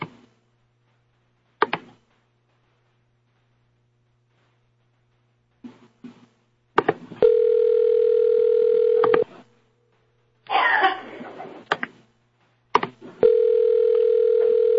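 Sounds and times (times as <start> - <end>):
burst of rustling noise: 0.0 - 7.5, 9.2 - 13.6
telephone dial tone while placing a call: 7.2 - 9.3, 13.2 - 14.7.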